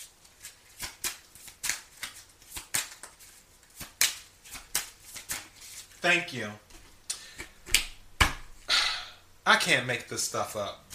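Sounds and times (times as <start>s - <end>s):
deck of cards being shuffled: 0.0s - 6.0s
speech: 6.0s - 6.7s, 9.5s - 10.8s.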